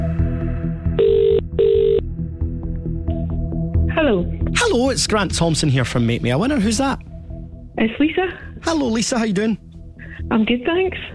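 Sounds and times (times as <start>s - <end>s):
low music: 0.0s - 11.1s
outgoing phone ringback tone: 1.0s - 2.0s
speech: 4.1s - 7.0s, 7.8s - 9.6s, 10.3s - 11.1s.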